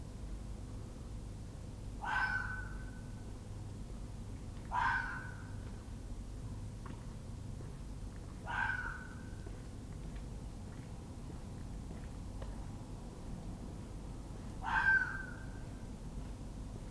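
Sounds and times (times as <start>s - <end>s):
steady low rumbling background noise: 0.0s - 16.8s
fox giving faint harsh clipped cries: 2.0s - 2.7s, 14.6s - 15.4s.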